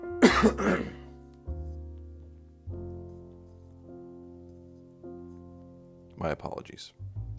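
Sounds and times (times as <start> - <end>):
person coughing from allergies: 0.2 - 1.1
speech: 0.4 - 1.0, 6.2 - 7.2.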